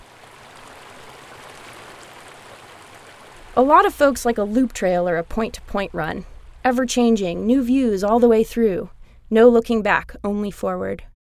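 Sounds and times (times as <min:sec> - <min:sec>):
mountain stream rushing: 0:00.0 - 0:06.7
speech: 0:03.6 - 0:11.1.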